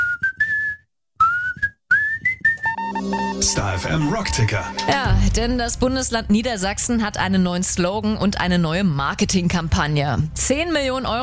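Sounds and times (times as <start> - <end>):
person whistling a tune: 0.0 - 5.0
speech: 3.4 - 11.2.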